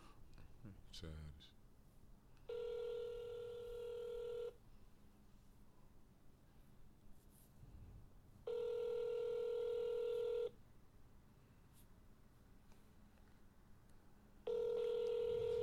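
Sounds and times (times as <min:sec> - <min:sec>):
faint hiss: 0:00.0 - 0:15.6
speech: 0:00.6 - 0:01.6
outgoing phone call ringback tone through a handset: 0:02.5 - 0:04.6, 0:08.5 - 0:10.5, 0:14.5 - 0:15.6.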